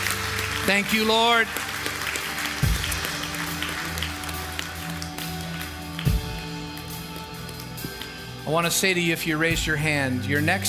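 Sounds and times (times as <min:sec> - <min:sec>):
church audience applause: 0:00.0 - 0:08.2
speech: 0:00.7 - 0:01.7, 0:08.5 - 0:10.6.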